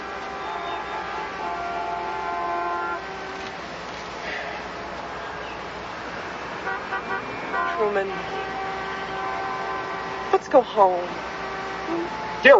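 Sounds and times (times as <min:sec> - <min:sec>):
car horns honking in a traffic jam: 0:00.0 - 0:12.5
constant rumble of traffic: 0:00.0 - 0:12.5
speech: 0:07.8 - 0:08.5, 0:10.4 - 0:11.3, 0:11.9 - 0:12.5.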